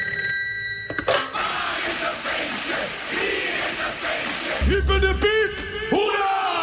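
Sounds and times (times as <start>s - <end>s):
telephone ringing on an outgoing call: 0.0s - 1.4s
crowd noise: 1.3s - 6.6s.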